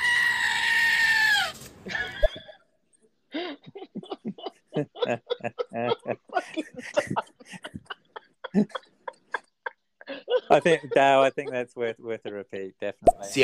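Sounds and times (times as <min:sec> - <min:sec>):
goat screaming: 0:00.0 - 0:01.6
speech: 0:01.8 - 0:02.0, 0:10.6 - 0:13.4
people chuckling: 0:01.9 - 0:02.6, 0:03.4 - 0:12.9.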